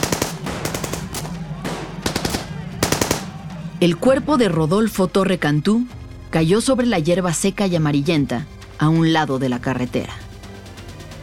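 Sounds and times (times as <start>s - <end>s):
rapid gunfire from an armed gang on a highway toward Matamoros: 0.0s - 3.4s
speech: 3.8s - 10.2s.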